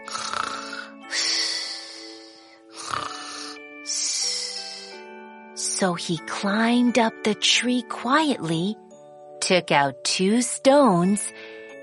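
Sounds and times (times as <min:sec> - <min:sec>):
loud raspy snoring: 0:00.0 - 0:03.6
speech: 0:05.8 - 0:08.8, 0:09.5 - 0:11.4.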